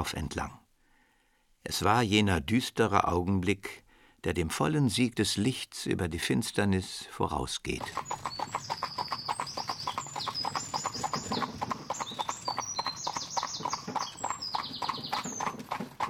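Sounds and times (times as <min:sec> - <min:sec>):
speech: 0:00.0 - 0:00.6, 0:01.6 - 0:09.5
high bird chirps: 0:07.8 - 0:15.7
four-horse carriage laden with luggage with hooves clip-clopping: 0:07.8 - 0:16.0.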